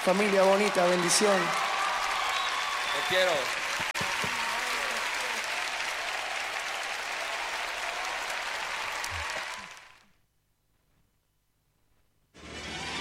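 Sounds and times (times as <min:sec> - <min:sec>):
speech: 0:00.0 - 0:01.7, 0:03.0 - 0:03.9
loud dense audience applause: 0:00.0 - 0:10.1.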